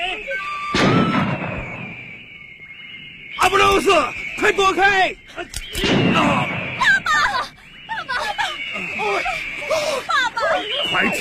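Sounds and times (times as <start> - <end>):
people shouting in a Chinese audio drama: 0.0 - 2.0, 3.4 - 11.2
gunshot in a Chinese audio drama: 0.7 - 2.2, 5.7 - 6.9
speech: 3.8 - 6.5
laughter: 6.8 - 11.2.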